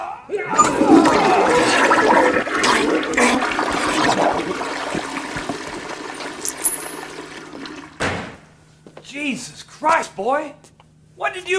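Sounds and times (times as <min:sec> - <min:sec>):
speech: 0:00.3 - 0:00.8, 0:09.8 - 0:11.5
toilet flushing with rushing water settling into gurgling and trickling: 0:00.5 - 0:08.1
brief knock or thud: 0:08.0 - 0:08.4.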